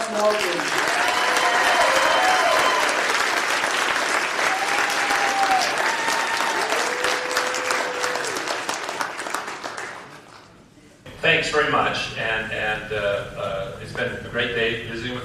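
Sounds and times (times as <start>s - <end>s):
large audience applause: 0.0s - 10.6s
speech: 0.1s - 0.9s, 11.6s - 15.2s.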